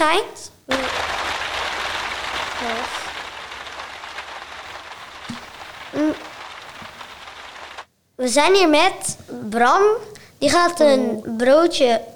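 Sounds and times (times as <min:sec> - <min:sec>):
speech: 0:00.1 - 0:01.0, 0:02.6 - 0:03.1, 0:08.2 - 0:12.1
heavy rain: 0:00.7 - 0:07.9.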